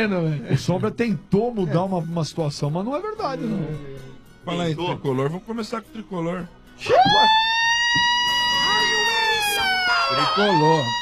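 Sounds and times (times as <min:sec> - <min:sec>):
speech: 0:00.0 - 0:08.1, 0:10.1 - 0:10.9
ambulance siren: 0:06.8 - 0:10.9.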